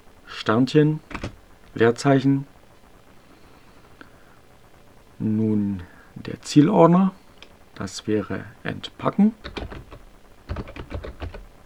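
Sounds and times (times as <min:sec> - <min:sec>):
speech: 0:00.5 - 0:01.1, 0:01.8 - 0:02.5, 0:05.2 - 0:07.2, 0:07.8 - 0:10.0
typing commands on a computer keyboard: 0:01.1 - 0:01.4, 0:09.4 - 0:11.6.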